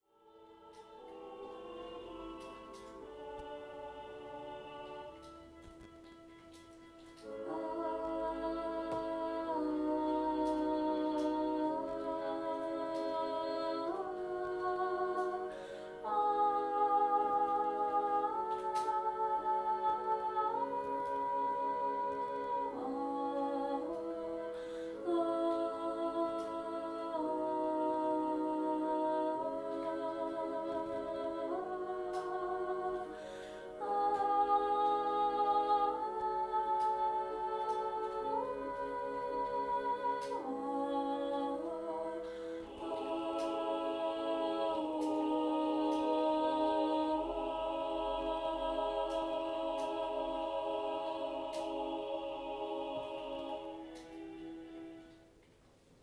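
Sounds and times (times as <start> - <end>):
soprano singing: 0.0 - 55.4.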